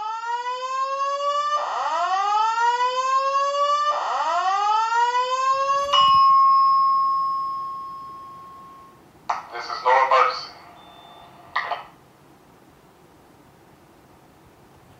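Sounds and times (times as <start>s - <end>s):
hotel fire alarm blaring: 0.0s - 9.0s, 9.9s - 11.9s.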